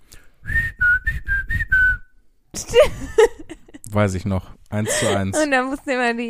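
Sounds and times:
mother whistling a short melody to call children inside: 0.4s - 2.2s
talking and laughter: 2.6s - 4.0s, 4.8s - 5.6s
speech: 2.7s - 3.3s, 4.0s - 6.2s.

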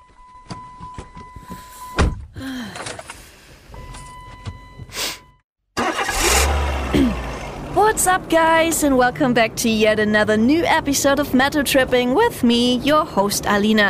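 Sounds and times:
car starter cranking with sharp clicks and whirring: 5.8s - 7.8s
car engine catching and roaring: 5.8s - 10.4s
speech: 7.8s - 13.8s.

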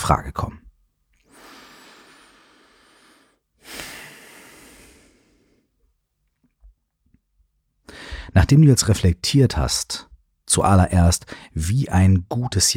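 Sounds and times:
speech: 0.1s - 0.6s, 8.3s - 12.7s
deep breath in and out during a guided relaxation exercise: 1.3s - 5.7s, 7.9s - 8.4s.

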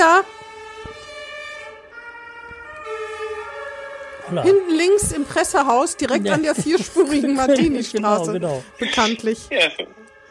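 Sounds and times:
ambulance siren wailing: 0.0s - 10.2s
speech: 4.3s - 10.0s
laughter: 6.0s - 10.0s.

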